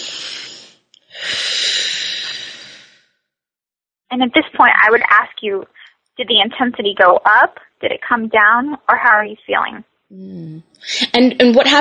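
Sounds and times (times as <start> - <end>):
deep breath in a calming exercise: 0.0 - 3.2
speech: 4.2 - 11.7.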